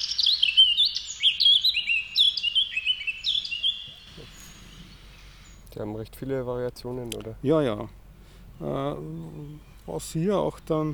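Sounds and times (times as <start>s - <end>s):
high fluting bird song with whistled phrases and chirps: 0.0s - 6.6s, 8.2s - 10.9s
speech: 5.8s - 8.0s, 8.6s - 10.9s.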